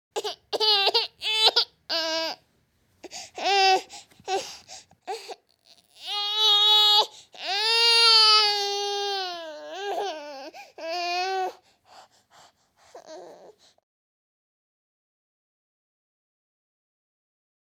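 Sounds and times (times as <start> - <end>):
baby whining and crying: 0.2 - 2.4, 3.0 - 13.8.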